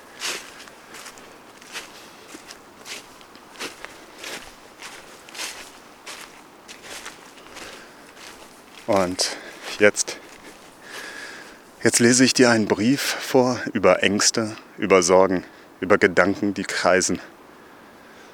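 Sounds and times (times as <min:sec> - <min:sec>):
footsteps crunching along a forest path: 0:00.0 - 0:13.4
speech: 0:08.9 - 0:10.0, 0:11.8 - 0:17.3.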